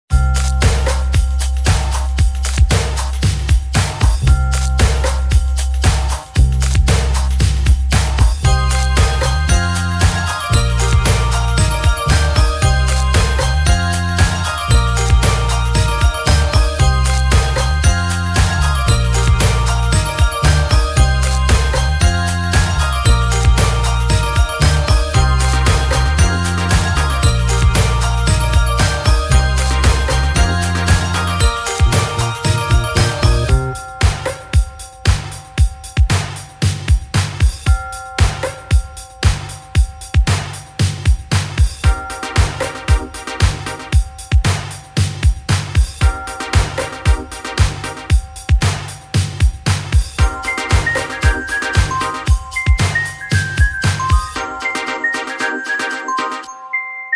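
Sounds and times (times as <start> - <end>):
pop breakbeat: 0.2 - 56.5.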